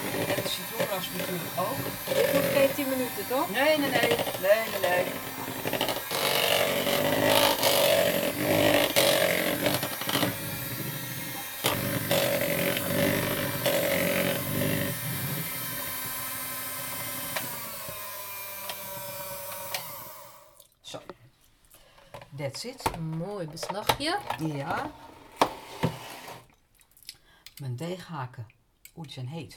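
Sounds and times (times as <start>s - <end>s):
electric hand mixer churning almond cake batter: 0.0s - 20.6s
speech: 1.1s - 5.9s, 22.6s - 25.1s, 27.8s - 29.5s.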